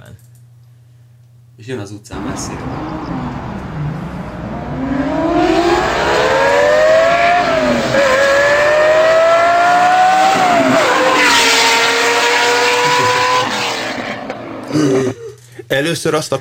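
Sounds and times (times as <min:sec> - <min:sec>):
speech: 0:01.6 - 0:04.0, 0:15.8 - 0:16.3
Lamborghini Countach engine revving and accelerating on a street: 0:02.1 - 0:14.6.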